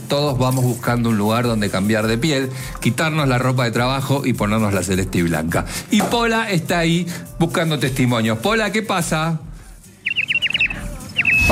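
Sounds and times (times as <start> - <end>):
speech: 0.1 - 9.5
small birds chirping in a city centre: 10.0 - 11.5.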